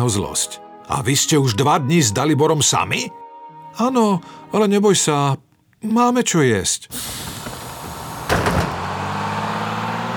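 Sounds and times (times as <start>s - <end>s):
speech: 0.0s - 7.3s
bus door opening with a whooshing hiss and clunk: 6.9s - 9.3s
bus engine idling with low rumble: 6.9s - 10.1s.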